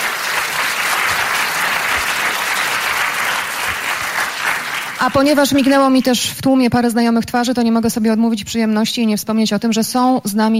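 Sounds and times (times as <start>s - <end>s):
audience applause at a talent competition: 0.0s - 5.5s
speech: 5.0s - 10.5s.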